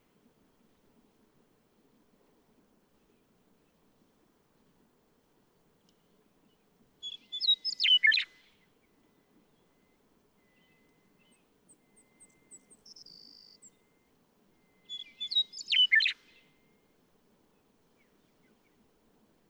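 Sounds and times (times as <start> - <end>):
western meadowlark singing gurgling flute-like song: 7.0 - 8.3, 10.4 - 16.5
faint high chirps: 9.7 - 16.8.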